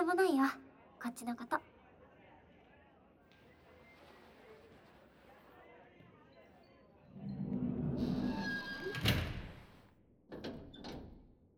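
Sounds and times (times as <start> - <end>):
speech: 0.1 - 1.7
sliding door rumbling along its track and shutting: 7.2 - 9.8.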